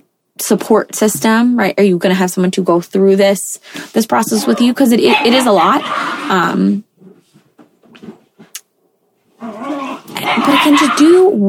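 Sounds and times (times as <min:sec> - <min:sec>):
speech: 0:00.4 - 0:06.9, 0:10.3 - 0:11.4
dogs barking: 0:04.2 - 0:06.3, 0:09.4 - 0:11.3.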